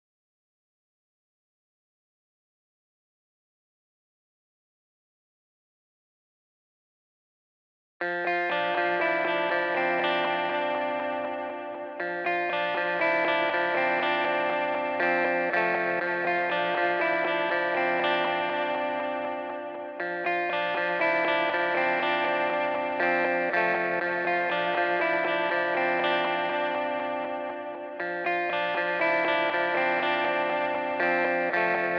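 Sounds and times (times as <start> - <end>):
high guitar in A sharp major at 120 BPM: 8.0 - 31.9.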